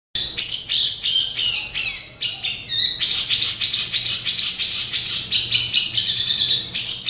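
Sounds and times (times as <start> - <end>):
Oriental magpie-robin song: 0.2 - 7.0.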